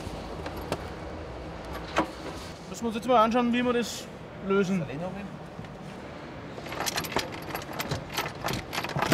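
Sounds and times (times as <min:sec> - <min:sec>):
speech: 0:02.8 - 0:05.4
quick irregular metallic clinks and rattles: 0:06.6 - 0:09.1
wrench loosening screws while fitting a pump: 0:06.6 - 0:09.1.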